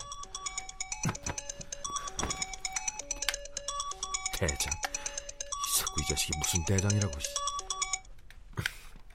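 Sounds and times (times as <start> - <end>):
mobile phone ringtone with a bright electronic melody: 0.0 - 8.1
soft thumps and rustles: 1.0 - 2.6
speech: 4.4 - 4.9, 6.0 - 7.5.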